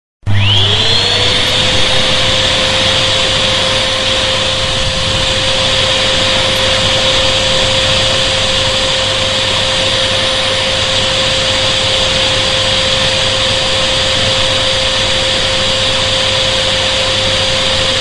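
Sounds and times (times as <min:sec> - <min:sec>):
vacuum cleaner: 0:00.2 - 0:17.9.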